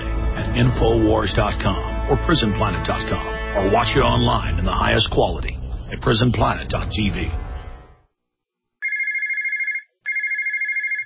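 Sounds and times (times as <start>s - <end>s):
speech: 0.6s - 7.4s
low rumble: 3.6s - 8.1s
electronic telephone ringing with a warbling trill: 8.8s - 11.0s.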